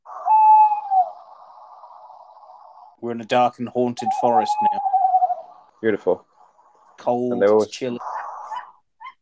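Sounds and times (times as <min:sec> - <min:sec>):
tawny owl hooting: 0:00.1 - 0:03.0, 0:03.7 - 0:05.8, 0:07.4 - 0:09.2
speech: 0:03.0 - 0:04.9, 0:05.8 - 0:06.3, 0:07.0 - 0:08.1.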